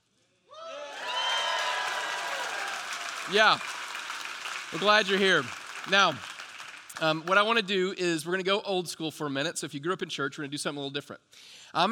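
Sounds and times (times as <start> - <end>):
people cheering and whooping: 0.5 - 3.6
large crowd applause: 0.8 - 7.6
speech: 3.3 - 3.8, 4.7 - 6.3, 7.0 - 11.8.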